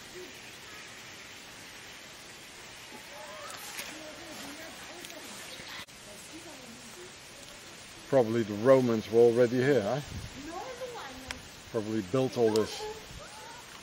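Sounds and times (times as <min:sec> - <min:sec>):
water gushing from a natural spring: 0:00.0 - 0:13.8
speech: 0:08.1 - 0:10.4, 0:11.7 - 0:13.0.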